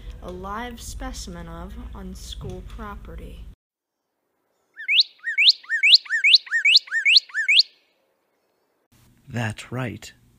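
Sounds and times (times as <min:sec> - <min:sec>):
speech: 0:00.2 - 0:03.5, 0:09.3 - 0:10.2
bird chirping bright rising whistled notes: 0:04.5 - 0:08.9.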